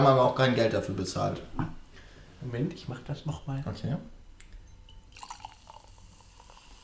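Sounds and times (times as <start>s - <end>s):
speech: 0.0s - 1.7s, 2.4s - 4.2s
fizzy drink being poured: 4.4s - 6.8s.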